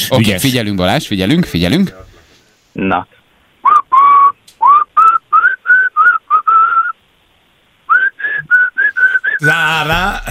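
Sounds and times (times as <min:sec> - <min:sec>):
speech: 0:00.0 - 0:02.0, 0:02.8 - 0:03.2, 0:09.4 - 0:10.2
man whistling a melody: 0:03.6 - 0:07.0, 0:07.9 - 0:09.4.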